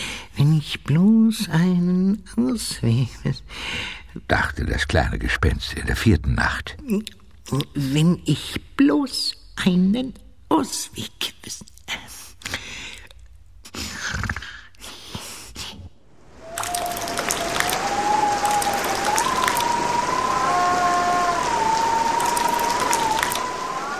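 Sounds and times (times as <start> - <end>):
speech: 0.4 - 12.6
thin wind tone howling in the chimneys: 16.0 - 23.9
heavy rain pattering on a roof in bad weather: 16.3 - 23.9.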